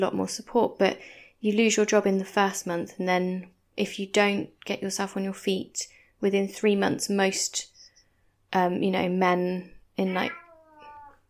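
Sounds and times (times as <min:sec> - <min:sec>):
speech: 0:00.0 - 0:07.7, 0:08.5 - 0:10.4
cat meowing: 0:10.1 - 0:11.2.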